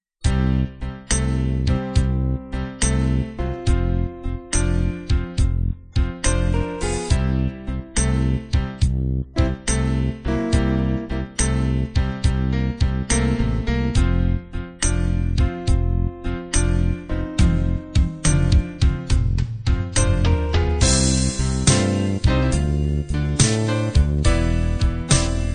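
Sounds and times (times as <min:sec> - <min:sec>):
slow blues music: 0:00.2 - 0:25.5.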